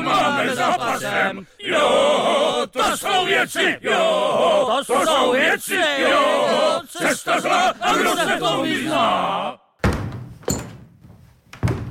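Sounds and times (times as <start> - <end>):
speech: 0.7 - 9.6
heavy wooden thuds on a deck floor: 9.8 - 10.5, 11.6 - 11.8.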